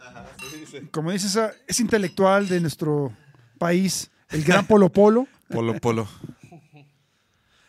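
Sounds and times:
laughter: 0.0 - 0.4
wine glasses clinking in a toast: 0.2 - 3.1
speech: 0.4 - 6.3.

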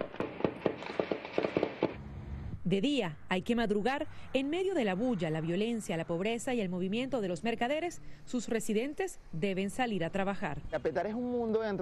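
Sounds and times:
gunshots at night: 0.0 - 2.0
speech: 2.7 - 11.8.

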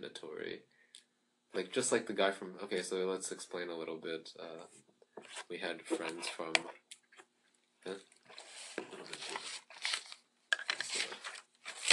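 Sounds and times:
speech: 0.0 - 0.8, 1.5 - 6.9, 7.8 - 8.1
paper being handled and crinkled: 7.9 - 11.9.

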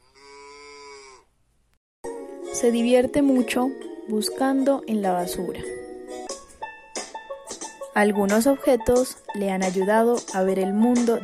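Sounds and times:
cow mooing: 0.1 - 1.3
speech: 2.6 - 5.8, 8.0 - 11.2.

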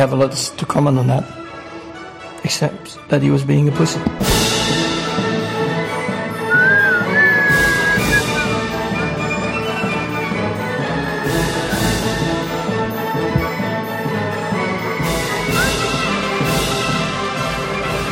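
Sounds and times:
speech: 0.0 - 1.4, 2.4 - 4.5
dense busy musical background: 3.6 - 17.3
whistle sliding up in pitch: 6.4 - 8.6, 15.4 - 15.9.

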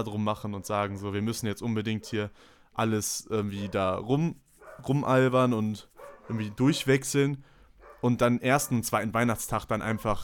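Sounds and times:
speech: 0.0 - 10.2
dog barking: 2.0 - 2.2, 3.6 - 4.0, 4.6 - 5.0, 6.0 - 6.8, 7.8 - 8.9, 9.8 - 10.2.

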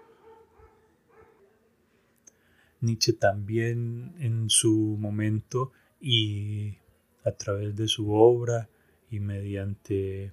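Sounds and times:
dogs barking in the distance: 0.0 - 1.6
speech: 2.8 - 10.3.

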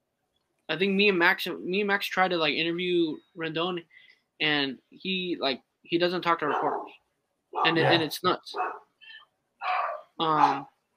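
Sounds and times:
speech: 0.7 - 8.8, 9.6 - 10.7
dogs barking: 6.4 - 7.0, 7.6 - 8.8, 9.6 - 10.7
dog yelping: 6.5 - 7.0, 7.6 - 8.0, 8.6 - 8.8, 9.6 - 10.7.

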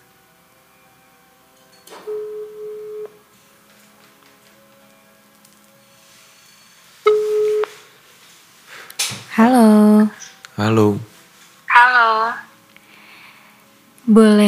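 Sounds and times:
outgoing telephone call ringback tone: 2.0 - 3.2, 7.1 - 7.8
speech: 9.4 - 11.1, 14.1 - 14.4.

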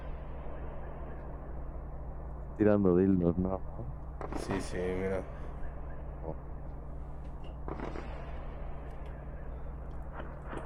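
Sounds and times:
steady noisy hum: 0.0 - 10.6
speech: 2.6 - 5.4
sharp gunshots from a war video: 4.2 - 5.4, 7.6 - 9.5, 10.1 - 10.6.

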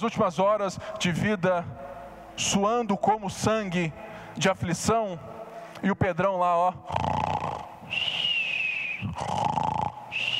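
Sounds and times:
speech: 0.0 - 1.8, 2.4 - 7.1
voice imitating a person snoring: 6.8 - 7.8, 9.0 - 10.3.

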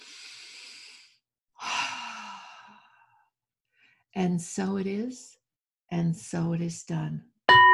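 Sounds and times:
deep breath in: 0.0 - 4.0
speech: 4.2 - 7.6.

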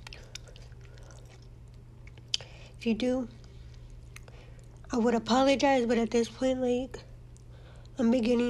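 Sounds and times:
chewing cold cooked food: 0.0 - 2.7, 3.4 - 4.9
speech: 2.8 - 3.4, 4.9 - 7.1, 8.0 - 8.4.

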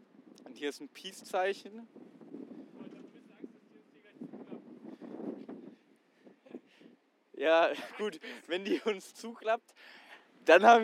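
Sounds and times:
strong wind buffeting the microphone outdoors up high: 0.0 - 7.9
speech: 0.6 - 2.1, 7.4 - 10.8.

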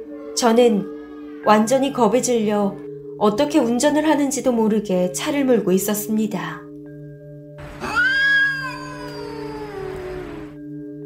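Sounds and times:
speech: 0.4 - 6.6
cat meowing in a long wailing cry: 7.7 - 10.6.

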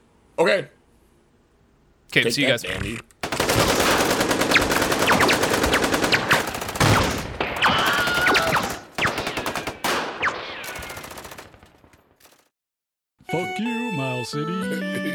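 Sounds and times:
speech: 0.4 - 0.8, 2.1 - 3.2, 14.3 - 15.0
machine gun fire: 3.2 - 12.4.

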